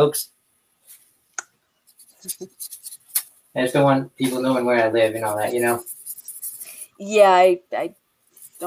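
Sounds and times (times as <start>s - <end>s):
speech: 0.0s - 0.3s, 2.2s - 2.8s, 3.6s - 5.9s, 7.0s - 8.0s
marker squeaking and scratching across paper crossing out writing: 1.9s - 3.3s, 4.2s - 7.4s, 8.3s - 8.6s.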